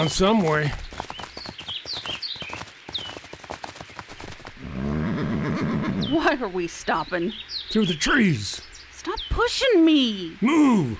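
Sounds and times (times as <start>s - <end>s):
speech: 0.0s - 0.9s, 6.3s - 10.9s
horse hooves clopping and shuffling: 0.0s - 4.9s
birds chirping: 0.0s - 10.9s
horse whinnying: 4.6s - 6.2s.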